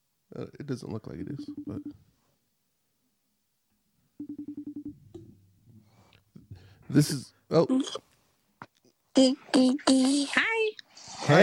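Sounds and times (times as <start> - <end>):
speech: 0.3 - 2.2, 6.9 - 8.1, 9.2 - 10.6, 11.2 - 11.4
faint phone ringing: 1.3 - 2.1, 4.2 - 5.4
electronic phone dialing beeps: 1.4 - 2.0, 4.2 - 4.9
single longer phone tone: 4.2 - 4.9.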